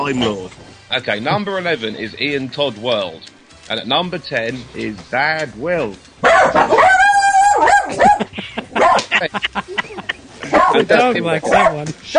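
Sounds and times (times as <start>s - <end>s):
speech: 0.0s - 6.9s, 9.2s - 12.1s
dog barking: 6.2s - 9.2s, 10.4s - 12.1s
dog giving a drawn-out yelping whine: 6.3s - 8.2s
laughter: 7.8s - 11.6s.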